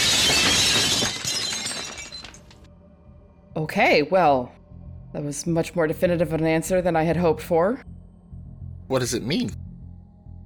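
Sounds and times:
scattered glass shards tinkling: 0.0 - 2.6
glass shattering from a fist strike: 0.0 - 2.7
speech: 3.6 - 7.9, 8.9 - 9.6.

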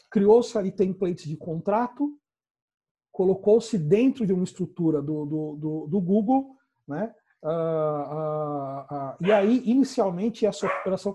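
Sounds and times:
speech: 0.1 - 2.2, 3.2 - 11.1
dog barking and yipping: 9.2 - 9.7, 10.6 - 11.0.

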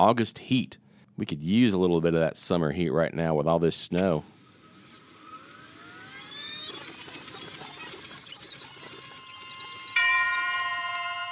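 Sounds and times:
speech: 0.0 - 4.4
dinner bell ringing: 10.0 - 11.3.

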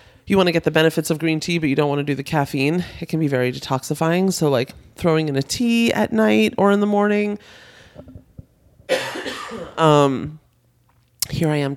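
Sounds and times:
speech: 0.3 - 8.2, 8.9 - 10.4, 11.3 - 11.7
rough raspy coughing: 8.9 - 10.0.

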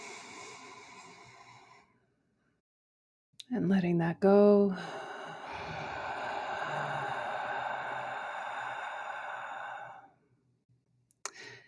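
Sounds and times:
long airy breath in during a guided breathing exercise: 0.0 - 1.9, 4.8 - 10.2
speech: 3.5 - 5.0.

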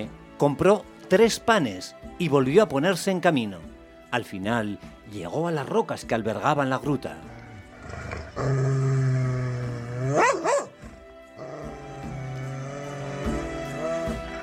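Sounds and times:
speech: 0.0 - 8.7
dog growling in a long rumbling snarl: 7.3 - 14.4
dog barking sharply: 10.0 - 10.8.

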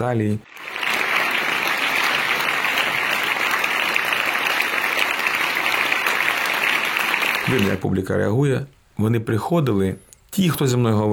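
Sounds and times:
speech: 0.0 - 0.6, 7.4 - 11.1
large theatre audience applauding in a standing ovation after a concert: 0.5 - 8.0, 10.0 - 10.8.

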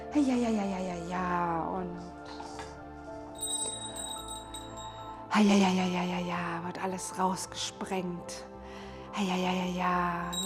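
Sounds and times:
speech: 0.1 - 2.2, 5.4 - 8.5, 9.2 - 10.4
meditation bell tones: 3.3 - 6.3, 10.3 - 10.4.

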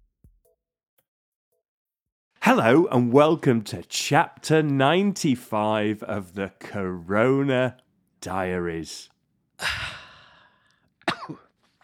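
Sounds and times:
speech: 2.4 - 9.8
person coughing harshly: 11.0 - 11.5.

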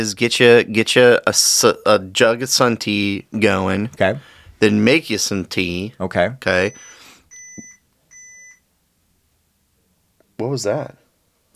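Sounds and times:
speech: 0.0 - 6.9, 10.4 - 11.0
electronic beeps: 6.6 - 8.6.

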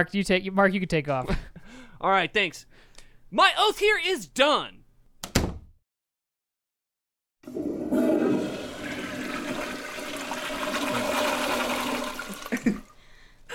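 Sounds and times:
speech: 0.0 - 4.8
gurgling toilet refill water: 7.4 - 12.9
toilet flushing in a bathroom stall: 7.4 - 13.0.

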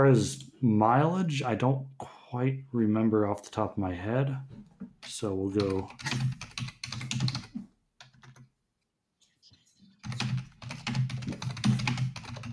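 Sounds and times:
speech: 0.0 - 6.4
fast typing on a computer keyboard: 5.0 - 8.4, 10.0 - 12.5.

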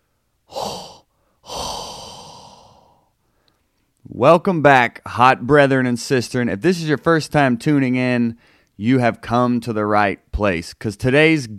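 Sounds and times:
hot heavy breathing into a microphone: 0.5 - 3.7
speech: 4.2 - 11.5.

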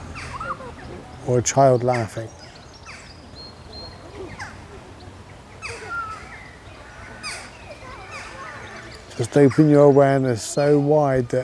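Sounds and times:
birds singing and calling around an outdoor duck pond: 0.0 - 11.4
speech: 1.3 - 2.4, 9.2 - 11.4.

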